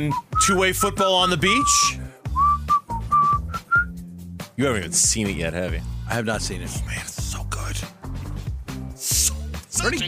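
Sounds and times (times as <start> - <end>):
speech: 0.0 - 2.0, 4.6 - 7.9, 9.8 - 10.0
person whistling a short melodic movie tune: 0.0 - 4.0.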